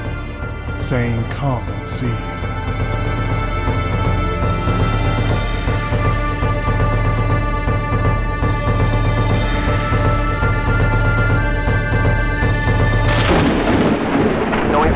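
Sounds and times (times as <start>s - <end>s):
dense steady musical drone with pulsing low beat: 0.0s - 14.5s
speech: 0.8s - 3.0s
rolling thunder: 13.1s - 14.9s.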